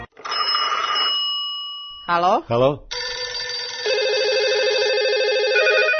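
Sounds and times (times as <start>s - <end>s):
warbling telephone line ring tone before a call to Paraćin connects: 0.2s - 1.9s, 2.9s - 5.9s
speech: 2.1s - 3.0s.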